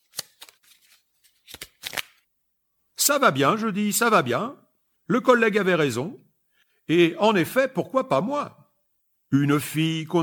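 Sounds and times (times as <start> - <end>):
deck of playing cards turned between fingers: 0.0 - 2.2
speech: 3.1 - 6.3, 6.9 - 8.6, 9.3 - 10.2.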